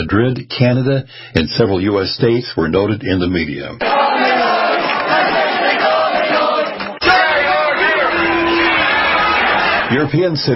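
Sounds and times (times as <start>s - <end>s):
speech: 0.0s - 4.4s, 9.9s - 10.5s
crowd of anti-vaccination protesters shouting: 3.8s - 10.0s.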